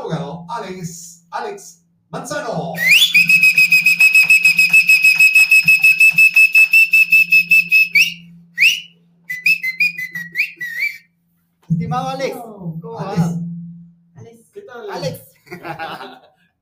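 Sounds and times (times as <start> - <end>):
speech: 0.1 - 3.4
loud piercing trilled whistling: 2.8 - 11.2
laughter: 15.4 - 16.4.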